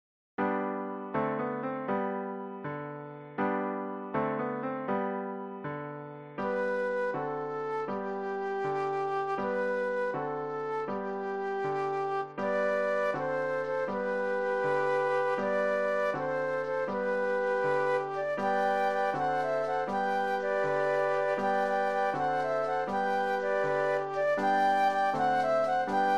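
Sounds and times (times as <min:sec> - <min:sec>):
piano: 0:00.4 - 0:26.1
flute trio: 0:06.4 - 0:26.1.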